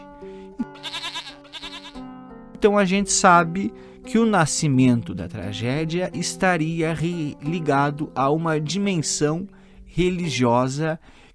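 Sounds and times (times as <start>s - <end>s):
goat bleating: 0.6s - 2.0s
speech: 2.6s - 11.2s.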